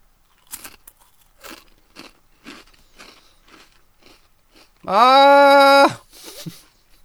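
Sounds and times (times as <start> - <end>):
crunchy chewing of a bite of food: 0.2 - 5.7
speech: 4.8 - 6.6.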